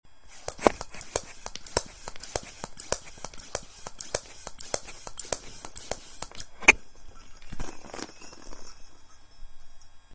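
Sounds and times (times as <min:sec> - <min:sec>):
hand pump pumping: 0:00.3 - 0:06.6.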